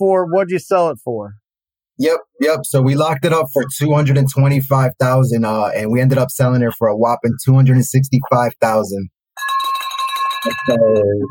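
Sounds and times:
speech: 0:00.0 - 0:01.4, 0:02.0 - 0:09.6, 0:10.4 - 0:11.2
bell sound effect ringing: 0:09.4 - 0:11.2.

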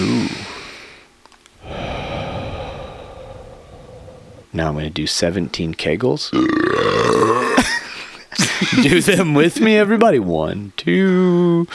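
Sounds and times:
big deep breath: 0:00.0 - 0:04.6
faint small clicks: 0:01.2 - 0:01.6
speech: 0:04.6 - 0:06.9, 0:08.6 - 0:11.7
laughter: 0:07.6 - 0:09.3.

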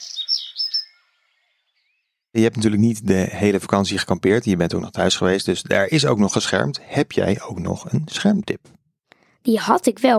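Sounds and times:
bright high-pitched bird chirps: 0:00.0 - 0:02.4
speech: 0:02.3 - 0:08.8, 0:09.4 - 0:10.1.

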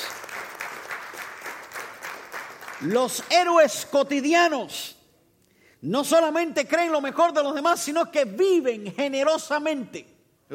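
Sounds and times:
audience applauding: 0:00.0 - 0:03.5
speech: 0:02.8 - 0:05.0, 0:05.8 - 0:10.5.

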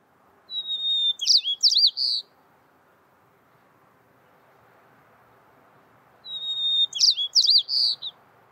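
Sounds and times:
quiet outdoor background: 0:00.0 - 0:08.5
white-crowned sparrow singing: 0:00.5 - 0:02.3, 0:06.2 - 0:08.2.

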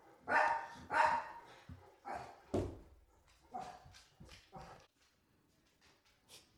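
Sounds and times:
large dog barking at a truck: 0:00.2 - 0:02.4.

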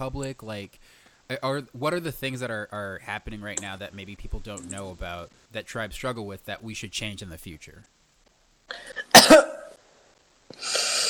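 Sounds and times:
speech: 0:00.0 - 0:08.0
noisy exhale or throat rasp: 0:00.8 - 0:01.3, 0:10.5 - 0:11.0
person coughing sharply: 0:08.7 - 0:09.7
person breathing in: 0:10.5 - 0:11.0.

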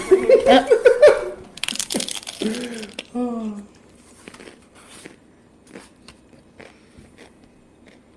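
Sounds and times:
laughter: 0:00.0 - 0:01.5
office paper crinkling as pages are turned: 0:01.6 - 0:03.2
person talking: 0:02.4 - 0:03.8.

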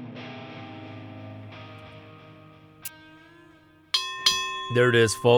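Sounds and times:
boxing ring bell signalling the start of a round: 0:02.9 - 0:05.3
speech: 0:04.7 - 0:05.3.

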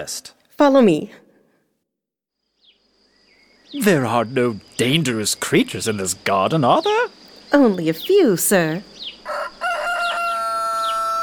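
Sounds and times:
speech: 0:00.0 - 0:01.2, 0:03.7 - 0:09.4
rooster crowing: 0:09.2 - 0:11.2.

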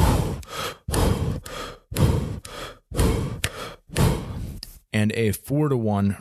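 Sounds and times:
heavy rhythmic breathing during jump-rope double unders: 0:00.0 - 0:04.9
speech: 0:05.0 - 0:06.1.

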